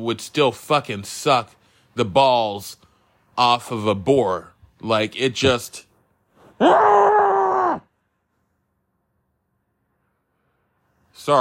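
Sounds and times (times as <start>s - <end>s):
speech: 0.0s - 5.9s, 6.6s - 7.1s
strained muffled vocal cry: 6.6s - 7.9s.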